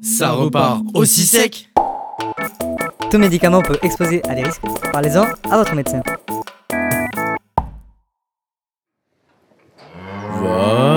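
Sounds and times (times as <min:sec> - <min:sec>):
speech: 0:00.0 - 0:06.1
thump: 0:07.6 - 0:08.0
cow mooing: 0:09.8 - 0:10.9.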